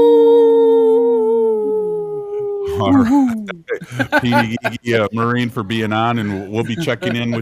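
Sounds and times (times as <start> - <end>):
group of people howling like wolves: 0.0 - 3.2
laughter: 2.7 - 7.4
speech: 2.8 - 7.4.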